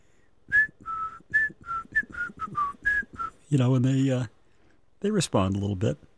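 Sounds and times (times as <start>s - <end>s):
person whistling a short bouncy tune: 0.5s - 3.4s
speech: 3.5s - 4.4s, 5.0s - 6.1s.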